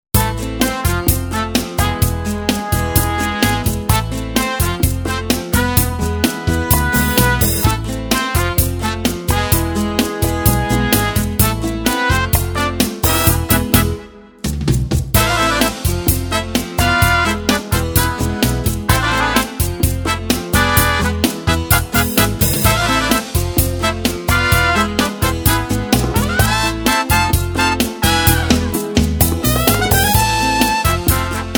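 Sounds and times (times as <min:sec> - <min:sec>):
cha-cha music: 0:00.1 - 0:31.5.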